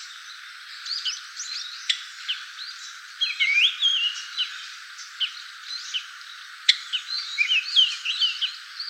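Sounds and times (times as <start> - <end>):
Japanese grosbeak high chirps and slurred whistles: 3.2 - 4.6, 6.9 - 8.5.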